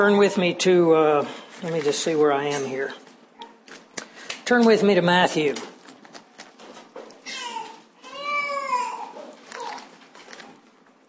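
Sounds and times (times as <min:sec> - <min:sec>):
speech: 0:00.0 - 0:03.0, 0:04.5 - 0:05.7
baby crying in a large room: 0:07.2 - 0:09.8.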